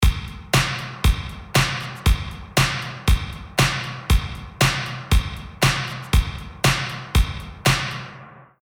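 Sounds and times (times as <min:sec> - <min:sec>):
distorted drums: 0:00.0 - 0:08.4.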